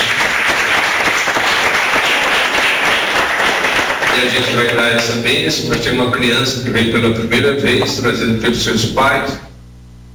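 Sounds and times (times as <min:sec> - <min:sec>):
audience applauding: 0:00.0 - 0:05.2
speech: 0:04.2 - 0:09.5.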